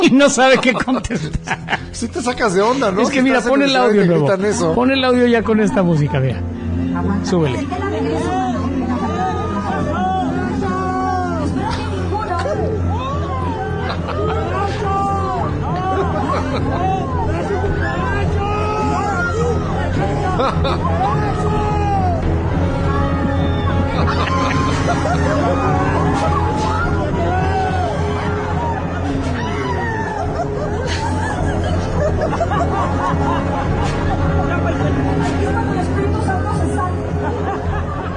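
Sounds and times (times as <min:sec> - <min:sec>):
laughter: 0:00.0 - 0:06.4, 0:07.6 - 0:38.1
speech: 0:00.0 - 0:08.6, 0:20.4 - 0:21.3
large concert crowd shouting and yelling: 0:07.9 - 0:35.2.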